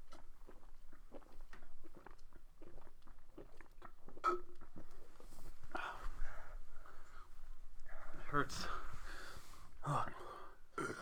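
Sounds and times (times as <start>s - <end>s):
person burping: 4.2s - 4.5s, 10.8s - 10.9s
speech: 8.3s - 8.8s, 9.8s - 10.2s.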